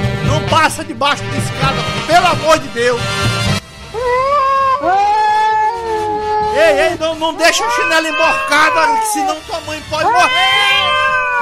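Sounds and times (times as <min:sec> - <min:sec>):
speech: 0:00.6 - 0:03.4, 0:06.6 - 0:11.0
cat meowing: 0:03.9 - 0:11.3.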